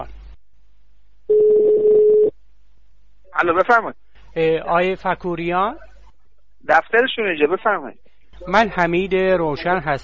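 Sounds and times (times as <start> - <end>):
telephone ringback tone of a call to a municipal office: 1.3 - 2.3
speech: 3.4 - 5.9, 6.6 - 10.0.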